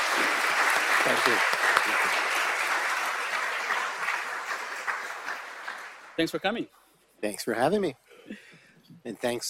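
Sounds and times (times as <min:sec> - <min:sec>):
audience at a talk event applauding: 0:00.0 - 0:06.2
speech: 0:01.0 - 0:02.1, 0:06.2 - 0:08.4, 0:09.0 - 0:09.4.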